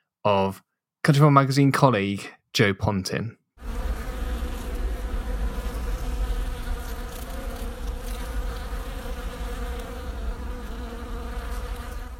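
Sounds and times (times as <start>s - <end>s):
speech: 0.2s - 3.4s
many honeybees buzzing among clematis flowers in a garden in early January: 3.6s - 12.1s.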